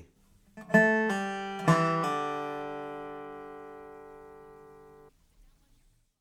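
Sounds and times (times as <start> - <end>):
guitar pull-off exercise: 0.6 - 5.1.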